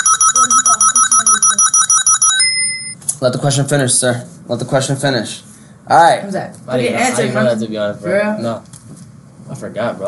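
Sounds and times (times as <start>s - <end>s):
game show buzzer beeping: 0.0s - 3.0s
speech: 3.2s - 8.7s, 9.5s - 10.0s.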